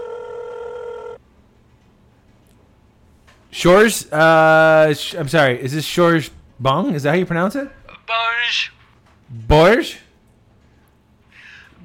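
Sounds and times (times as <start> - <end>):
buzzy phone ringback tone on an outgoing call: 0.0 - 1.2
faint hum: 0.0 - 11.8
speech: 3.5 - 10.0.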